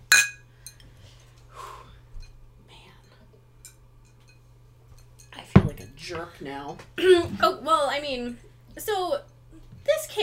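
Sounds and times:
glasses clinking in a toast: 0.0s - 0.8s, 3.0s - 6.0s
low steady hum: 0.0s - 10.2s
soft breathy sound: 0.6s - 3.2s
speech: 6.1s - 9.3s.

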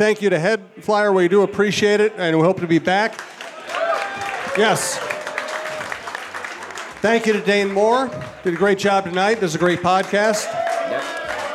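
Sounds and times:
speech: 0.0s - 3.4s, 4.6s - 5.1s, 7.0s - 11.2s
audience applauding: 3.0s - 11.5s.

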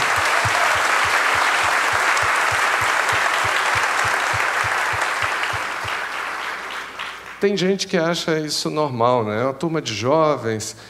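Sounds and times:
rhythmic low thumps: 0.0s - 6.1s
audience applause: 0.0s - 7.4s
speech: 7.4s - 10.8s.

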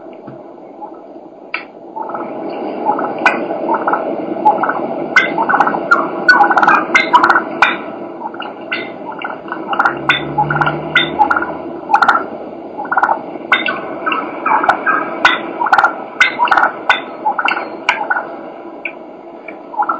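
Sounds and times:
wild turkey hen clucking: 0.8s - 19.9s.

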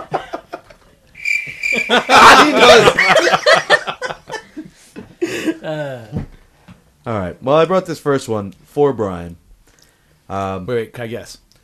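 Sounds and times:
laughter: 0.0s - 0.8s, 1.5s - 5.8s
cricket sound effect played from a button: 1.2s - 3.2s
speech: 1.9s - 3.7s, 7.1s - 9.4s, 10.3s - 11.4s.

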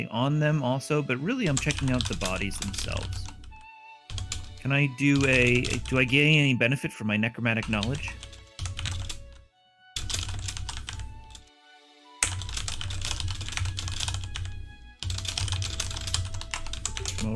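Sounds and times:
speech: 0.0s - 3.4s, 4.6s - 8.3s
typing on a computer keyboard: 1.5s - 4.6s, 5.2s - 6.1s, 7.6s - 9.4s, 10.0s - 11.4s, 12.2s - 17.3s.

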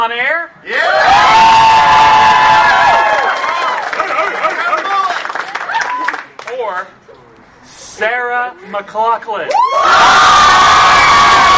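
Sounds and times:
speech: 0.0s - 1.5s, 8.0s - 11.5s
live crowd cheering and whooping: 0.7s - 4.5s, 5.5s - 6.3s, 9.5s - 11.5s.

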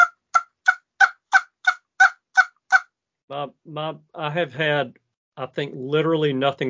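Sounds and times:
blown turkey call honks: 0.0s - 2.9s
speech: 3.3s - 6.6s.

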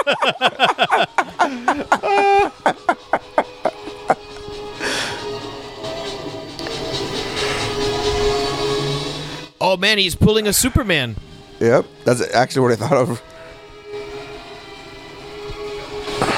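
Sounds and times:
speech: 0.0s - 2.8s, 9.8s - 13.3s
laughter: 0.0s - 4.4s
train chugging and rumbling on rails: 5.4s - 9.2s.

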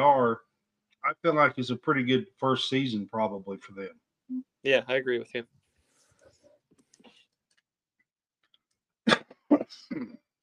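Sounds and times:
speech: 1.1s - 5.6s, 9.9s - 10.2s
person with a cough and cold coughing: 9.1s - 10.2s
rough gravelly throat clearing: 9.1s - 10.3s.

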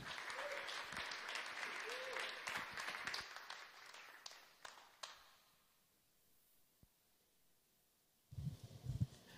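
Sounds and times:
audience applause welcoming a speaker onto a stage: 0.0s - 5.2s.

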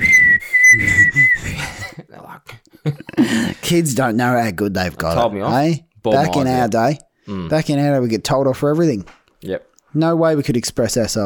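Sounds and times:
person whistling a high tune: 0.0s - 1.9s
speech: 2.3s - 11.2s.

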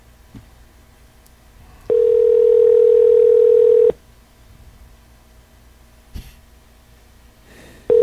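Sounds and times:
telephone ringback tone on an outgoing call: 1.9s - 4.0s.

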